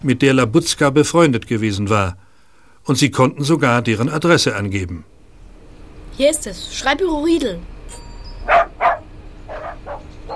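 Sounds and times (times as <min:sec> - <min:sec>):
speech: 0:00.0 - 0:02.2, 0:02.9 - 0:05.1, 0:06.2 - 0:07.7
small dog barking: 0:08.4 - 0:10.3.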